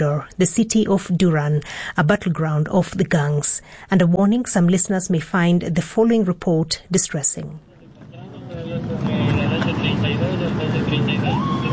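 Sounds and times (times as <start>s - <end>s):
speech: 0.0s - 7.7s
police car engines idling at a crime scene in Durán Ecuador: 7.7s - 11.7s.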